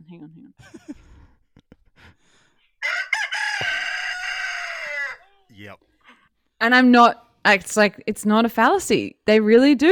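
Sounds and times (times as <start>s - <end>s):
speech: 0.1s - 1.0s, 6.6s - 9.9s
rooster crowing: 2.8s - 5.5s.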